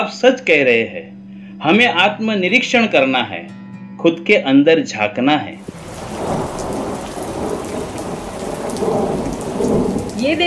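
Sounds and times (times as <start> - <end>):
speech: 0.0 - 5.8, 10.2 - 10.4
deep rumble of thunder: 5.6 - 10.4
heavy rain pouring down: 5.6 - 10.4.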